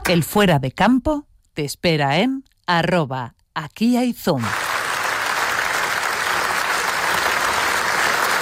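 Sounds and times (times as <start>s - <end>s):
speech: 0.1s - 4.6s
large audience applauding in an ovation: 4.4s - 8.4s.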